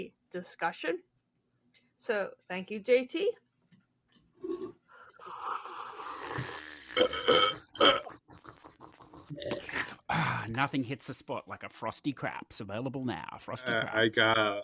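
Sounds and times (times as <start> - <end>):
speech: 0.0 - 1.1, 2.0 - 3.4, 9.3 - 14.6
long rumbling burp after drinking: 4.4 - 10.6, 13.7 - 14.6.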